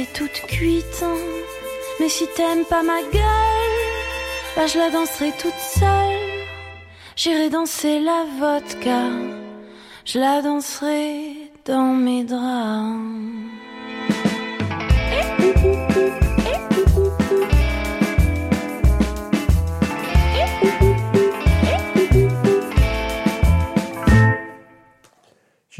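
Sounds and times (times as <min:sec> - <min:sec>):
speech: 0:00.0 - 0:03.7, 0:04.6 - 0:06.3, 0:07.2 - 0:09.4, 0:10.0 - 0:13.5
bouncy polka-like song with a steady thumping beat: 0:14.1 - 0:24.4
short two-note cuckoo clock calls: 0:15.3 - 0:17.5.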